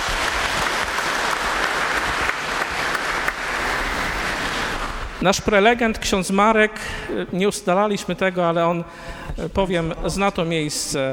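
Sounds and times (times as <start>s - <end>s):
audience applause: 0.0s - 5.2s
speech: 5.2s - 11.1s.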